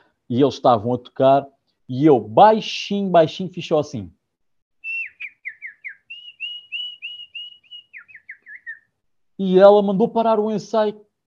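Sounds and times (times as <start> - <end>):
speech: 0.3 - 4.2, 9.4 - 11.1
person whistling imitation of a small bird in a studio: 4.8 - 8.9.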